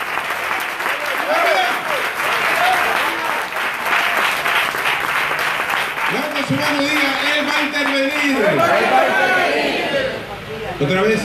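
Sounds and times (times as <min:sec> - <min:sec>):
church congregation applauding with joy: 0:00.0 - 0:09.8
speech: 0:08.3 - 0:09.4, 0:10.7 - 0:11.2.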